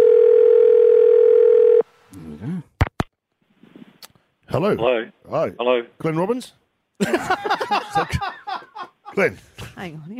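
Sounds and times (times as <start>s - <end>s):
telephone dial tone: 0.0s - 1.8s
speech: 4.6s - 8.4s, 9.2s - 10.1s
laughter: 7.0s - 9.4s.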